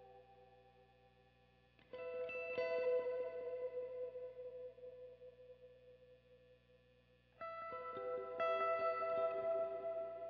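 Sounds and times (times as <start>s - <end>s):
electric guitar: 0.0s - 0.8s, 1.8s - 6.4s, 7.4s - 10.2s.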